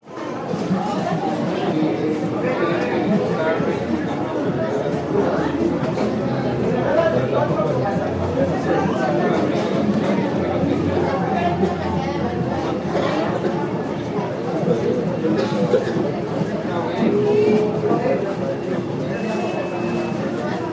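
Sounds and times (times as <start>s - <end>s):
restaurant ambience in Mexico: 0.0s - 20.7s.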